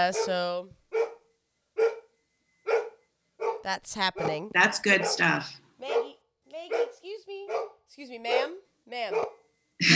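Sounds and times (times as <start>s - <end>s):
speech: 0.0s - 0.8s, 3.6s - 6.1s, 8.0s - 9.9s
dog barking at the mailman: 0.1s - 1.2s, 1.8s - 2.1s, 2.7s - 3.6s, 4.2s - 9.4s.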